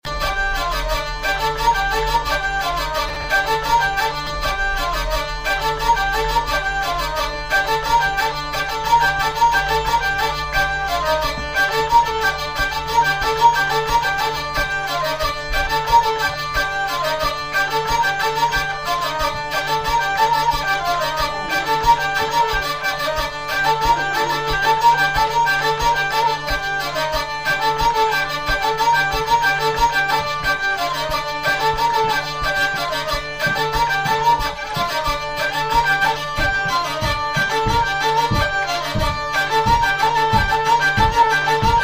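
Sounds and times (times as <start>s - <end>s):
hurdy-gurdy playing a six-beat ridee dance tune: 0.0s - 41.8s.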